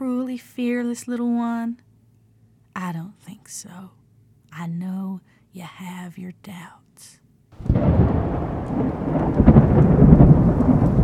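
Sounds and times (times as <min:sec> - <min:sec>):
speech: 0:00.3 - 0:01.9, 0:02.8 - 0:09.0
deep roll of thunder: 0:07.6 - 0:11.0
steady rain: 0:07.6 - 0:11.0.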